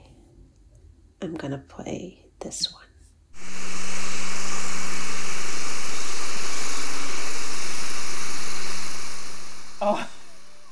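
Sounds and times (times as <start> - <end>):
speech: 1.2 - 2.9, 9.8 - 10.6
research vessel engine drone recorded underwater by hydrophone: 3.4 - 10.6.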